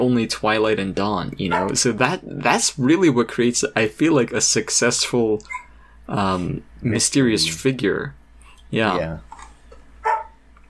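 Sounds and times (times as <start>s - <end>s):
speech: 0.0s - 9.3s
faint low hum: 0.0s - 10.6s
dog barking: 1.5s - 1.8s, 10.0s - 10.4s.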